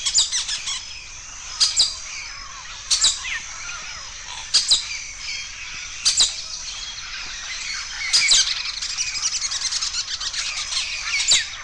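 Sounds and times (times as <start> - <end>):
bird chirping: 0.0 - 11.6.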